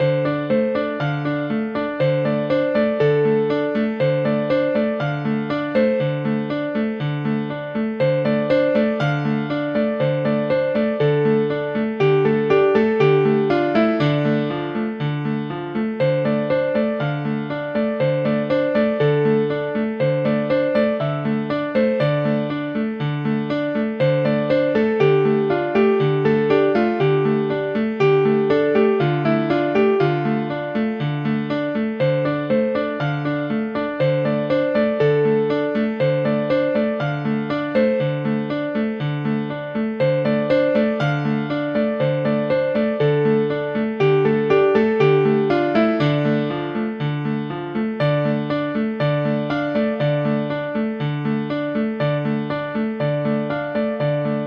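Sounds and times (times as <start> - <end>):
concert grand piano in a cathedral: 0.0 - 54.4.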